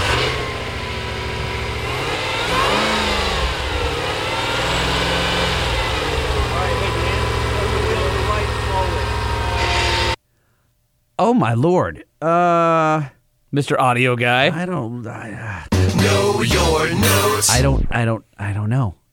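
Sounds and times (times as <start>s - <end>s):
700-horsepower Hellcrate V8 crate engine in an old M715 revving: 0.0s - 10.2s
speech: 11.4s - 19.0s.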